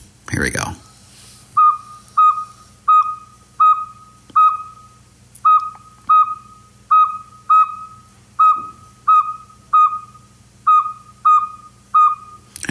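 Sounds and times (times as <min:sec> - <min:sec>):
speech: 0:00.3 - 0:00.8
Northern Saw-whet Owl giving whistled toots: 0:01.6 - 0:12.4.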